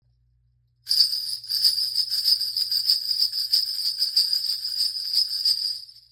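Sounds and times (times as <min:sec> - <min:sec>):
bell shaker: 0:00.9 - 0:06.1.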